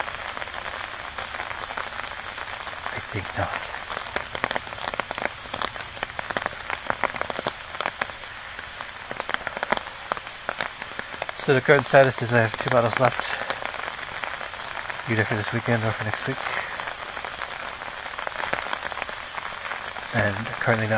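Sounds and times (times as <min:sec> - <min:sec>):
rain pattering on a surface: 0:00.0 - 0:20.9
speech: 0:03.1 - 0:04.1, 0:11.5 - 0:13.4, 0:15.1 - 0:16.6, 0:20.2 - 0:20.9.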